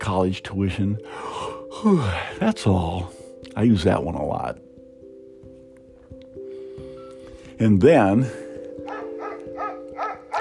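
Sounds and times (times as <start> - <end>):
speech: 0.1 - 4.7, 7.6 - 8.4
dog barking in short yelps: 8.8 - 10.4.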